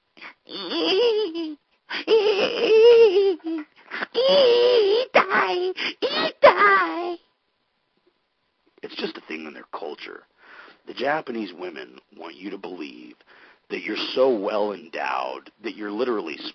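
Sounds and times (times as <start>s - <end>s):
human voice imitating a wounded platypus moaning: 0.2s - 7.2s
speech: 11.1s - 16.5s.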